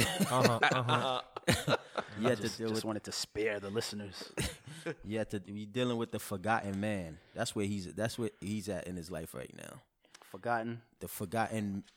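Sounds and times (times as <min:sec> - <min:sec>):
gruff voiced throat clearing: 0:00.0 - 0:00.6
laughter: 0:00.0 - 0:03.2, 0:04.1 - 0:05.1
speech: 0:00.1 - 0:11.9.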